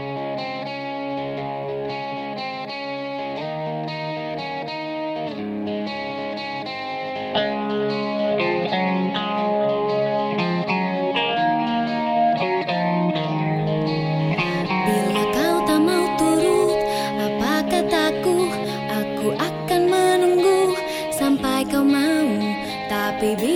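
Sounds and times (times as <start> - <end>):
layered electric instruments: 0.0 - 23.5
sung melody: 0.0 - 23.5
pop song with vocals: 14.3 - 23.5.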